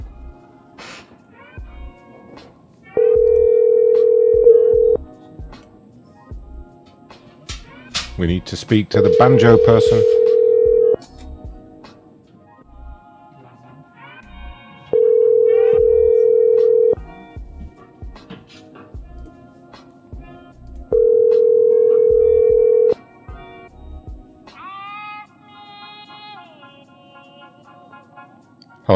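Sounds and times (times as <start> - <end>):
telephone ringback tone on an unanswered call: 3.0 - 5.0, 8.9 - 11.0, 14.9 - 17.0, 20.9 - 23.0
speech: 8.2 - 10.2.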